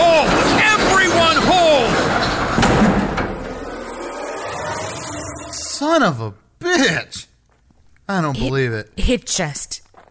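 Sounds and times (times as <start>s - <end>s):
doors opening with a heavy mechanical rush: 0.0s - 5.9s
speech: 6.0s - 7.2s, 8.1s - 9.8s.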